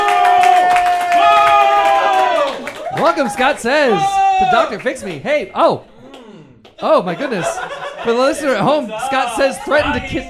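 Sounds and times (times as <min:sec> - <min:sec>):
steady high whistle or cheer: 0:00.0 - 0:04.2
audience applauding to welcome a guest onto a stage: 0:00.0 - 0:07.4
speech: 0:03.0 - 0:05.9, 0:06.8 - 0:10.2
laughter: 0:06.0 - 0:10.2.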